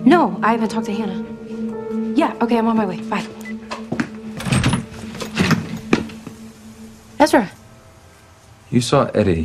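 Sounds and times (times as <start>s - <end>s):
speech: 0.1s - 1.4s, 2.1s - 3.4s, 7.3s - 7.6s, 8.7s - 9.4s
door opening and shutting: 3.7s - 6.3s.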